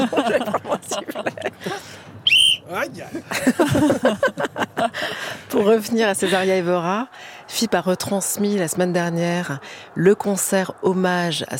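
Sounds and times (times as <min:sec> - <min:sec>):
speech: 0:00.0 - 0:00.4, 0:01.0 - 0:01.8, 0:05.6 - 0:11.5
people laughing: 0:00.0 - 0:01.9, 0:03.0 - 0:06.6
single short shrill whistle blast: 0:02.2 - 0:02.7.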